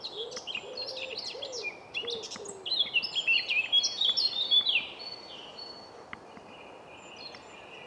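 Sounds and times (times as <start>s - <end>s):
Eurasian blackcap singing, Sylvia atricapilla: 0.0s - 7.8s
dove cooing softly: 0.1s - 2.7s.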